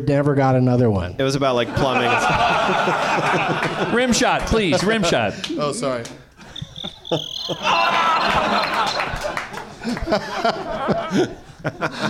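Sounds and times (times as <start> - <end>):
speech: 0.0 - 6.2, 7.1 - 12.0
people chuckling: 1.6 - 5.1, 6.4 - 12.0
high steady cricket chirping sound effect: 6.4 - 9.2.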